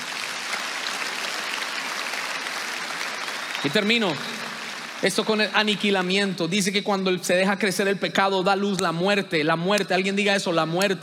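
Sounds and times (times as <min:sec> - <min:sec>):
large crowd applauding: 0:00.0 - 0:07.0
speech: 0:03.6 - 0:11.0.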